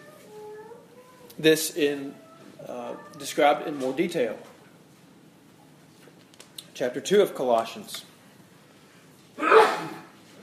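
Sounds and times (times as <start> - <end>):
speech: 1.4 - 4.5, 6.8 - 8.1
sneeze: 9.4 - 10.2.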